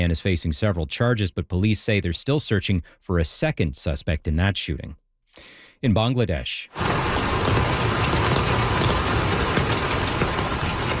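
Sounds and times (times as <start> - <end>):
speech: 0.0 - 7.8
roar of floodwater from swollen rivers after monsoon rains in Bangladesh: 6.8 - 10.9.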